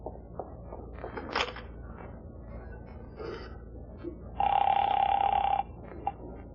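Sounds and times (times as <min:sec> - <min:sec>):
telephone ringing: 0:04.4 - 0:05.7.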